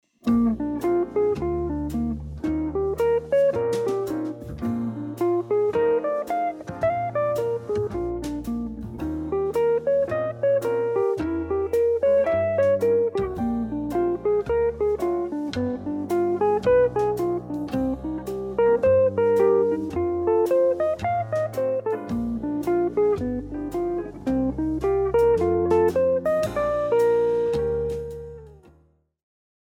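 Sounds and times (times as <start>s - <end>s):
jazz blues arpeggio study in B flat on guitar: 0.3s - 28.7s.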